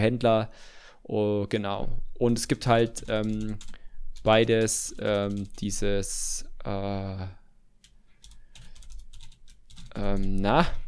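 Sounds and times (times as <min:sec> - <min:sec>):
speech: 0:00.0 - 0:07.4, 0:10.0 - 0:10.8
typing on a computer keyboard: 0:02.9 - 0:05.6, 0:07.8 - 0:10.5.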